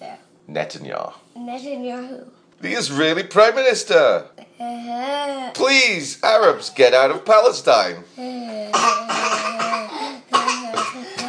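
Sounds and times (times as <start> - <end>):
speech: 0.5 - 9.6
forced voiced coughs: 8.7 - 11.2.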